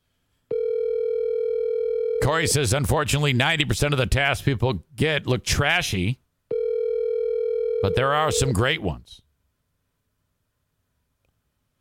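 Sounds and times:
telephone call tone: 0.5 - 2.6, 6.5 - 8.6
speech: 2.3 - 6.2, 7.8 - 9.2.

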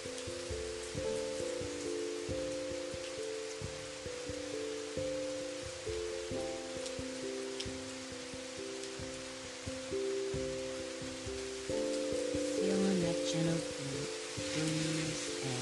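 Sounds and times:
soft sustained musical tones: 0.0 - 15.6
steady rain falling: 0.0 - 15.6.

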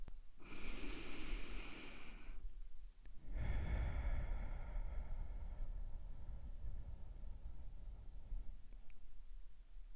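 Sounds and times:
deep meditation breathing in through nose, out through mouth: 0.4 - 2.5, 3.2 - 9.3.

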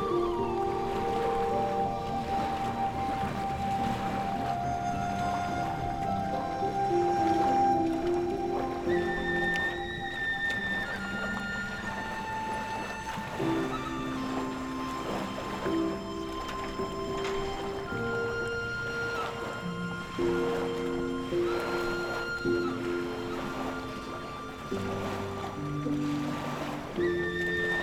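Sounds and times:
faint wash of waves: 0.0 - 27.8
soft flutes playing long held notes in a slow melody: 0.0 - 27.8.

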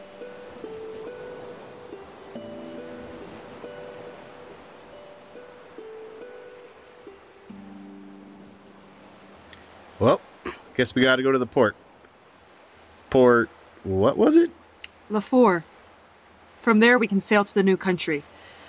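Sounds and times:
soft sustained musical notes: 0.0 - 10.1
ocean waves washing against the shore: 0.0 - 18.6
speech: 10.0 - 11.8, 13.1 - 15.7, 16.6 - 18.3.

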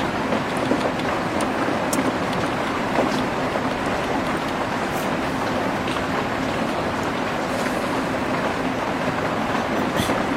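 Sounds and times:
rain pattering: 0.0 - 10.3.

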